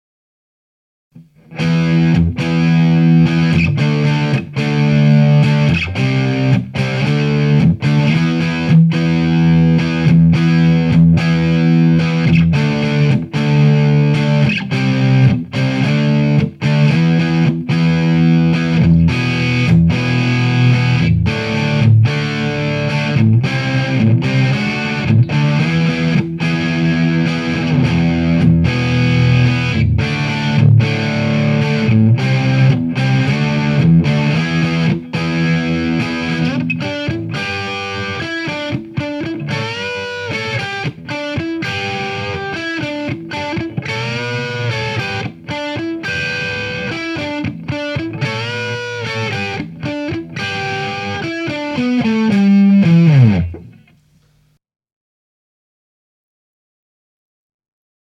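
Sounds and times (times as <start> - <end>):
clean electric guitar through Mesa and Marshall amplifiers: 1.2 - 54.0.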